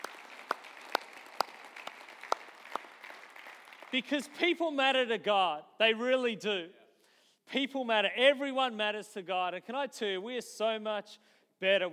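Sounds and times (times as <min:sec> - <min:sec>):
audience applauding: 0:00.0 - 0:04.4
sharper nearer claps: 0:00.0 - 0:04.4
speech: 0:03.9 - 0:06.8, 0:07.5 - 0:11.9.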